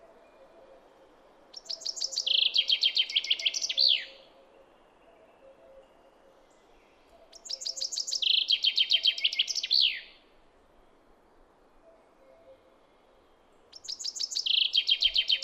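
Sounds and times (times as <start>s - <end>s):
common chaffinch Fringilla coelebs singing: 1.5s - 6.0s, 7.0s - 10.2s, 13.7s - 15.4s.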